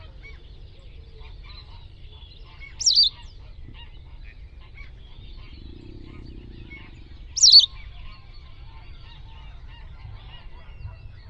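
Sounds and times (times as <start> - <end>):
bird giving short sharp high wavering calls: 0.0 - 11.2
faint low rumble: 0.0 - 11.2.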